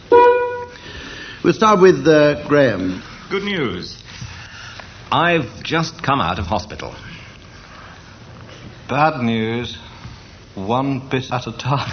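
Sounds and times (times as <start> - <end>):
game show buzzer pressed by the host: 0.0 - 0.8
speech: 1.4 - 4.0, 5.1 - 7.1, 8.9 - 9.8, 10.6 - 11.9.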